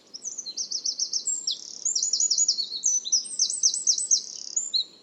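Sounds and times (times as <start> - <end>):
bird calling in fast high twittering runs: 0.2 - 4.9.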